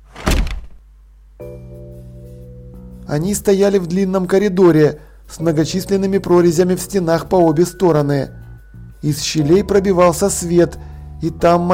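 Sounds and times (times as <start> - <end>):
heavy door slamming shut: 0.0 - 0.8
speech: 3.1 - 8.4, 9.0 - 11.7.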